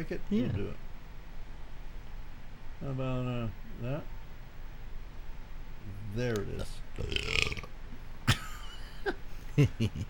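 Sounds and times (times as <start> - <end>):
speech: 0.0 - 0.9, 2.8 - 4.2, 5.8 - 7.7, 9.0 - 10.0
guttural burp after drinking: 7.0 - 7.7.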